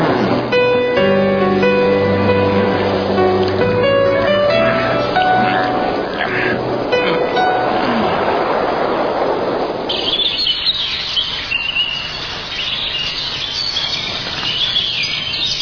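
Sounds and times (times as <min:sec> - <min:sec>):
birds chirping in a dense twittering chorus: 0:00.0 - 0:08.7, 0:09.9 - 0:15.6
steady rumbling noise: 0:00.0 - 0:11.5.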